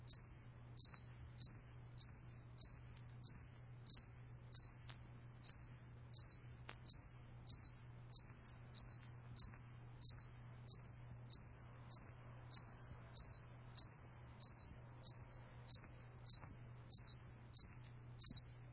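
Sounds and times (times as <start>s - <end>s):
cricket chirping: 0.0s - 18.6s
faint low hum: 0.0s - 18.7s.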